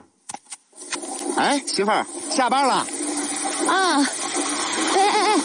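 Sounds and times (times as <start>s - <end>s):
tap gushing water at full flow: 0.9s - 5.4s
speech: 1.4s - 2.9s, 3.5s - 5.4s
person exclaiming: 4.9s - 5.4s.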